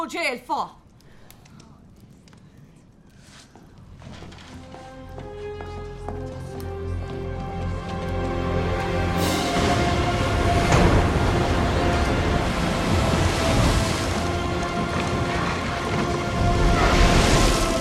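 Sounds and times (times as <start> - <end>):
speech: 0.0 - 0.8
heavy rain pouring: 7.7 - 17.7
thunder rumbling: 8.6 - 17.7.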